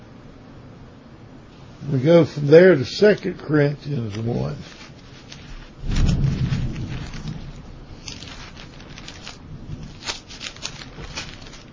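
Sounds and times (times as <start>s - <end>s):
speech: 1.8s - 4.8s
rain pattering: 4.1s - 11.7s
thunder rumbling during a thunderstorm: 5.8s - 11.2s.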